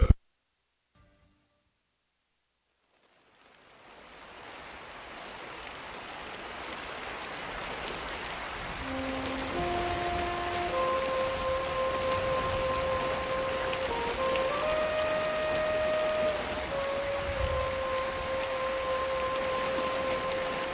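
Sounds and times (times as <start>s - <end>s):
rain beating against a window: 2.4s - 20.7s
soft sustained musical tones: 8.8s - 20.7s.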